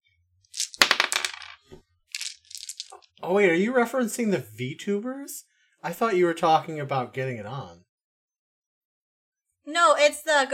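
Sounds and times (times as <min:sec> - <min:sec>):
shower of coins dropping and clattering: 0:00.5 - 0:01.6, 0:02.2 - 0:03.1
speech: 0:03.2 - 0:07.9, 0:09.7 - 0:10.5.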